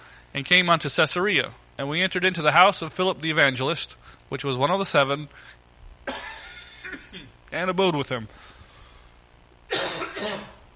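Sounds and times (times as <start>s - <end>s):
speech: 0.4s - 6.2s, 7.5s - 8.5s
harsh bad cough: 6.1s - 7.4s, 9.7s - 10.6s.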